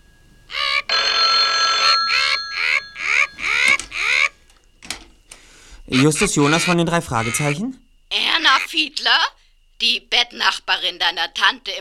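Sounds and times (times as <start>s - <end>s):
telephone bell ringing: 0.0s - 4.4s
speech: 5.9s - 7.9s, 8.7s - 11.7s.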